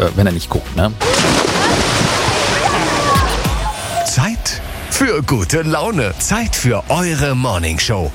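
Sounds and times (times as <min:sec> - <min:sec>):
speech: 0:00.0 - 0:01.9, 0:04.2 - 0:08.1
busy watery hubbub of a swimming pool: 0:00.0 - 0:08.1
person jumping from pool edge into outdoor public swimming pool in Gescher: 0:01.0 - 0:03.7
pool water churning and sloshing: 0:01.0 - 0:04.8.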